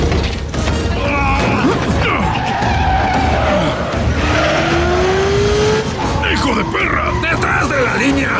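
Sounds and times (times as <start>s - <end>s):
clattering mechanical noise: 0.0s - 0.9s
bus tires screeching and skidding in a sharp swerve: 1.2s - 8.3s.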